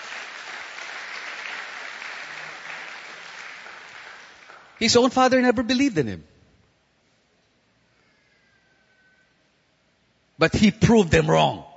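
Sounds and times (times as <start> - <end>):
congregation applauding during a church service: 0.0 - 5.1
speech: 4.8 - 6.3, 10.4 - 11.7.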